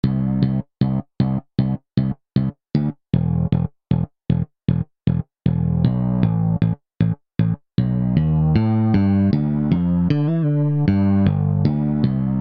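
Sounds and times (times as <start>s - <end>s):
bass synth: 0.0s - 12.3s.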